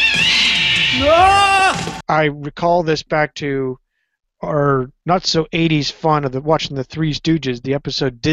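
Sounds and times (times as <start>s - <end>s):
cat screaming: 0.0s - 2.0s
speech: 1.0s - 1.5s, 2.1s - 3.8s, 4.4s - 8.3s.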